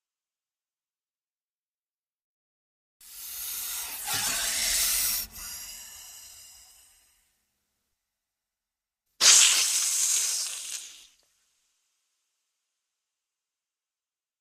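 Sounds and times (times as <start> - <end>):
snake hissing: 3.1 - 7.1, 9.2 - 11.2.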